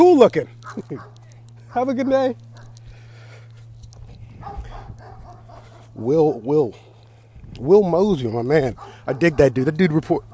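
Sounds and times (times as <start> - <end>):
speech: 0.2 - 2.5, 6.0 - 6.9, 7.6 - 10.3
dog barking: 0.6 - 2.8, 4.4 - 6.5, 8.6 - 10.3.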